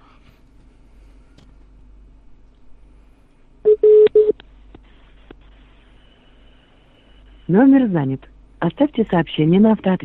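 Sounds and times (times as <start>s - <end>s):
telephone keypad tones as a number is dialed: 3.7s - 4.3s
speech: 7.5s - 10.0s.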